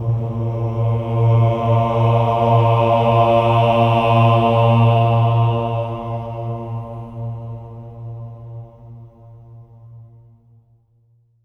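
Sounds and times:
swelling choir ahs on A#2: 0.0 - 7.6.

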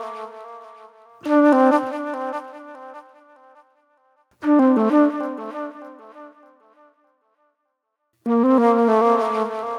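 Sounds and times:
psychedelic flute: 0.0 - 3.6, 4.4 - 6.8, 8.3 - 9.7.

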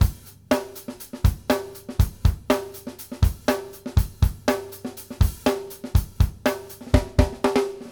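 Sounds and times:
drums: 0.0 - 7.9.

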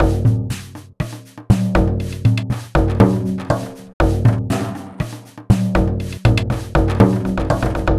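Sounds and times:
frame drum loop: 0.0 - 7.9.

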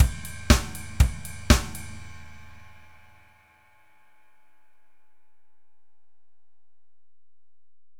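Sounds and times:
basic four ride drum loop: 0.0 - 3.2.

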